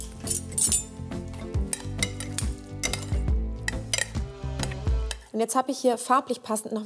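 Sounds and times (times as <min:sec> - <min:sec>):
utensils clinking and scraping against a bowl of melon salad: 0:00.0 - 0:04.2
speech: 0:00.3 - 0:01.2, 0:05.4 - 0:06.8.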